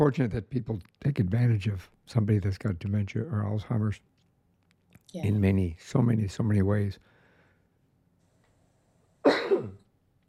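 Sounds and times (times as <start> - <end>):
speech: 0.0 - 4.1, 5.1 - 7.1
raspy throaty cough: 9.3 - 9.8.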